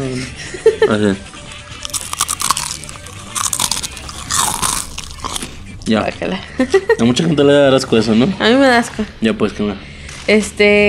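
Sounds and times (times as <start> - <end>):
speech: 0.1 - 1.4, 5.9 - 10.8
crunchy food being bitten and chewed: 1.8 - 5.8.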